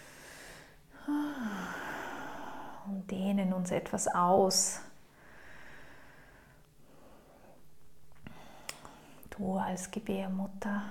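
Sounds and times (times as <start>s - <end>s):
deep airy breath drawn in and let out during a guided breathing exercise: 0.0s - 2.9s, 5.1s - 9.2s
speech: 3.1s - 4.9s, 9.4s - 10.8s.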